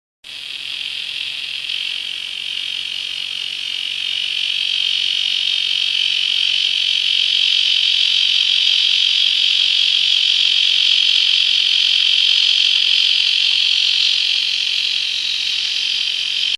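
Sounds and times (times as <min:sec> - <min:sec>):
cicada T virescens: 0:00.2 - 0:16.5.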